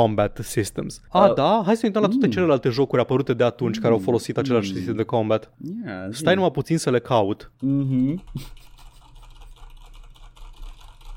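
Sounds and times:
speech: 0.0 - 8.7
typing on a computer keyboard: 7.6 - 11.1.

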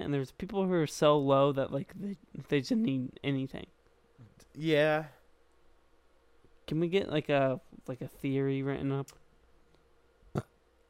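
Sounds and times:
speech: 0.1 - 3.8, 4.6 - 5.2, 6.7 - 9.2
burp: 10.3 - 10.6.

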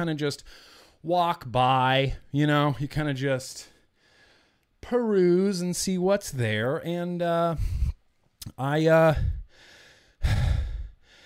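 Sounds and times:
speech: 0.0 - 3.7, 4.8 - 7.8, 8.4 - 9.4, 10.2 - 10.5
heavy breathing after running: 0.4 - 1.0, 3.7 - 4.7, 7.6 - 8.1, 9.0 - 11.2
drawn-out voiced sigh: 7.6 - 8.0, 9.0 - 11.2.

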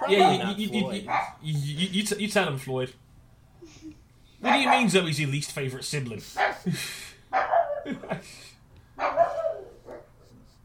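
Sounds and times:
dog barking excitedly: 0.0 - 1.4, 4.4 - 5.0, 6.4 - 6.6, 7.3 - 7.9, 9.0 - 10.1
speech: 0.1 - 3.0, 3.6 - 9.4.

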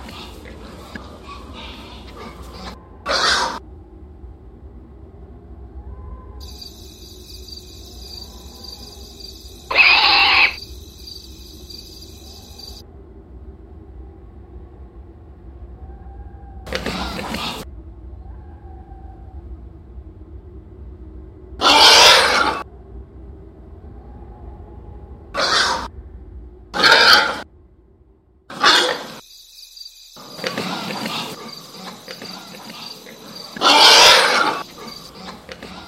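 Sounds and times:
hog grunting and snorting: 0.0 - 3.6, 16.7 - 17.6, 30.3 - 35.8
low steady rumble: 0.0 - 21.6, 22.3 - 28.5.

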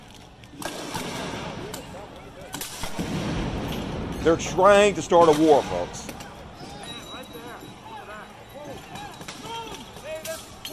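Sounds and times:
people's voices: 0.0 - 3.0, 3.9 - 10.7
police gunfire aimed at people in the streets: 0.6 - 6.3
speech: 4.2 - 6.1.

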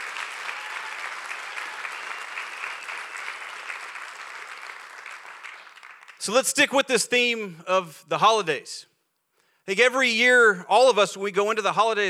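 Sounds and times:
large audience applauding: 0.0 - 6.3
speech: 6.2 - 8.9, 9.6 - 12.0.

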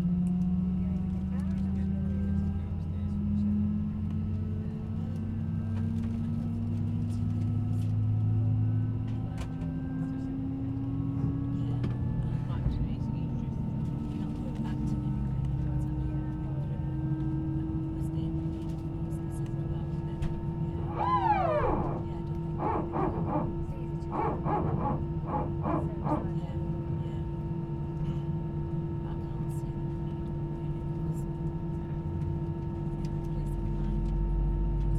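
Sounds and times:
airplane engines humming in the cabin during take-off: 0.0 - 34.9
short tonal bursts: 20.8 - 26.3
brief rising whine: 20.8 - 26.4.

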